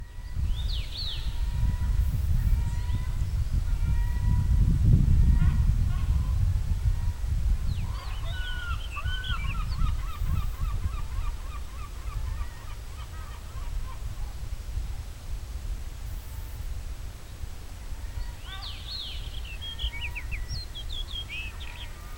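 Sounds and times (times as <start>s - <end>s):
Monticola saxatilis singing: 0.0s - 3.6s, 7.7s - 13.7s, 18.1s - 22.1s
background noise: 0.0s - 22.1s.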